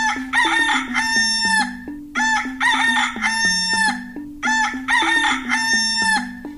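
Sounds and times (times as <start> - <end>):
rooster crowing cock-a-doodle-doo: 0.0 - 6.4.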